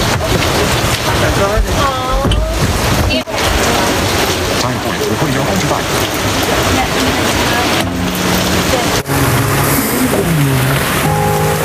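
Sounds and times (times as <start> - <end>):
rain falling: 0.0 - 11.6.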